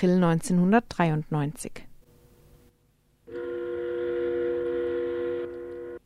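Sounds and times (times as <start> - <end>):
speech: 0.0 - 1.9
shipyard siren blaring: 3.3 - 6.0.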